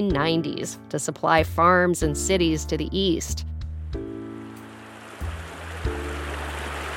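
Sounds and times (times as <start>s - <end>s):
speech: 0.0s - 4.1s
river water rushing: 4.7s - 6.9s.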